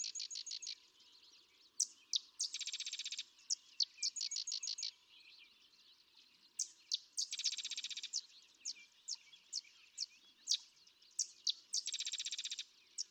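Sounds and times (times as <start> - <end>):
sedge wren singing chattering trills and chips: 0.0 - 0.8, 1.8 - 4.9, 6.6 - 13.0.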